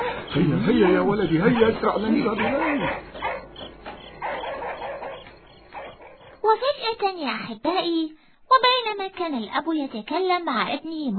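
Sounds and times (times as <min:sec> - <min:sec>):
group of stray dogs barking and yelping after dark: 0:00.0 - 0:06.5
speech: 0:00.3 - 0:03.2, 0:06.4 - 0:11.1.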